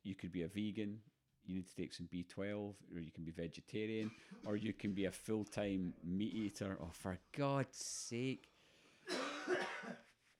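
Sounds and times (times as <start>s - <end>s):
speech: 0.1s - 8.5s
person coughing: 9.0s - 10.1s.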